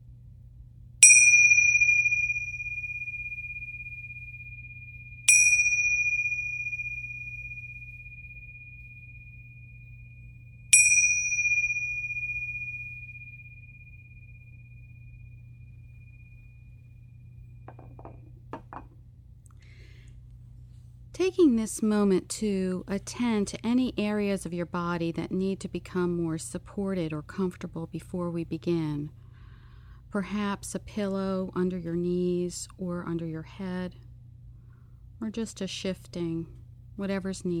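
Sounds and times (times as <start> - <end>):
low steady hum: 0.0 - 37.5
meditation bell chiming: 1.0 - 18.8
speech: 21.3 - 29.2, 30.1 - 34.0, 35.2 - 37.5.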